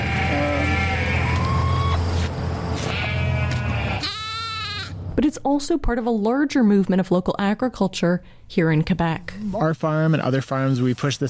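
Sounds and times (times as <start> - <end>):
sheep bleating on a farm: 0.0 - 1.9, 2.9 - 5.0
speech: 5.2 - 11.2.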